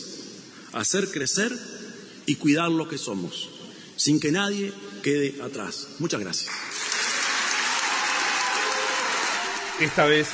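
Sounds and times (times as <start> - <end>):
speech: 0.7 - 6.8, 9.8 - 10.3
audience applause after a political speech in Uruguay: 6.5 - 10.3.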